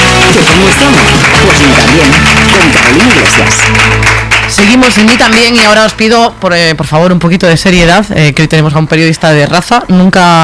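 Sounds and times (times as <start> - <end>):
audience applause: 0.0 - 5.8
speech: 0.5 - 10.4.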